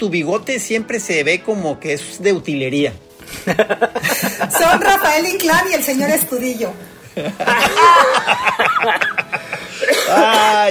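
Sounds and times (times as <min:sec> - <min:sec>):
speech: 0:00.0 - 0:10.6
older man laughing: 0:03.3 - 0:04.9, 0:07.2 - 0:10.6
older man coughing from a tickle in his throat: 0:09.0 - 0:10.6.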